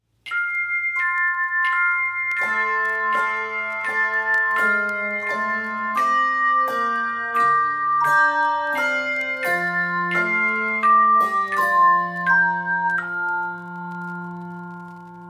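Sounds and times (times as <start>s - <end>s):
carol intro played on handbells: 0.3s - 15.2s.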